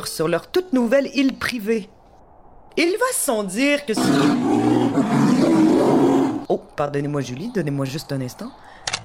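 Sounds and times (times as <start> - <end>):
speech: 0.0 - 2.0, 2.8 - 5.7, 6.5 - 8.8
polar bear roaring in Antarctica: 4.0 - 6.5.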